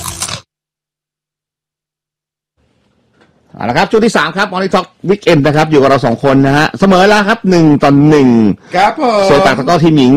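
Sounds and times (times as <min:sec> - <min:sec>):
crunching bite into thick large potato chips: 0:00.0 - 0:00.4
speech: 0:03.5 - 0:10.1.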